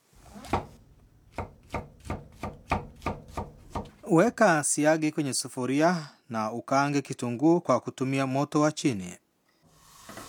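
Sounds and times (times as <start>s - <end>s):
knife chopping mushroom caps into thin slices on a board: 0.2s - 4.0s
speech: 4.1s - 9.2s.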